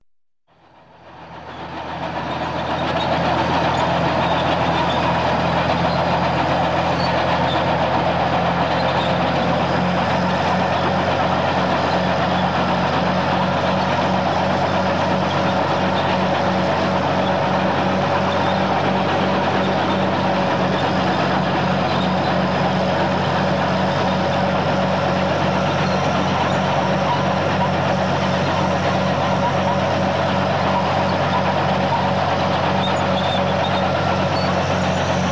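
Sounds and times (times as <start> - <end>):
tank moving: 0.7 - 35.3.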